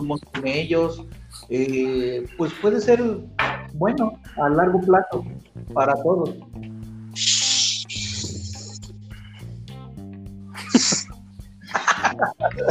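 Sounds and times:
speech: 0.0s - 6.5s
large beer bottle opening with fizzy hisses and a pop: 7.2s - 8.8s
laughter: 10.6s - 12.6s.

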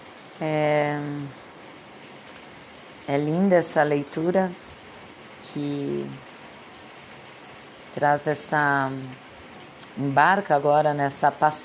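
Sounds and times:
rain falling: 0.0s - 11.6s
speech: 0.4s - 1.4s, 3.1s - 4.6s, 5.5s - 6.3s, 8.0s - 9.2s, 10.0s - 11.6s.

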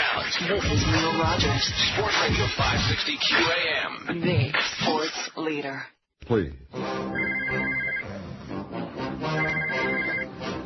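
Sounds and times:
speech: 0.2s - 7.2s
telephone ringing with a warbling electronic tone: 7.2s - 8.0s, 9.4s - 10.3s.

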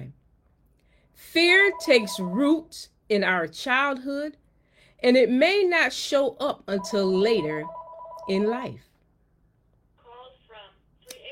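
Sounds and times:
speech: 1.2s - 4.4s, 5.0s - 8.9s
house phone ringing in electronic bursts: 1.6s - 2.6s, 6.7s - 8.7s.

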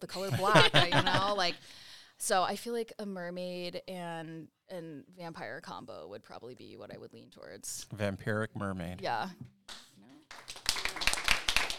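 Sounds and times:
speech: 0.0s - 10.5s
laughter: 0.1s - 1.6s
quick burst of hand claps: 9.7s - 11.7s.

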